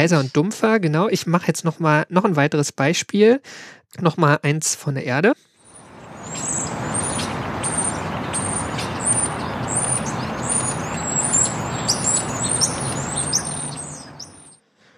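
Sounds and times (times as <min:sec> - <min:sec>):
speech: 0:00.0 - 0:05.5
non-native birds chirping and singing in a chorus: 0:05.6 - 0:14.6
steady broadband outdoor noise: 0:05.6 - 0:14.6.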